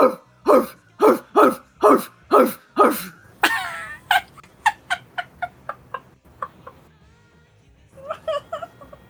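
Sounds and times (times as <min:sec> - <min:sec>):
dog barking furiously: 0:00.0 - 0:03.1.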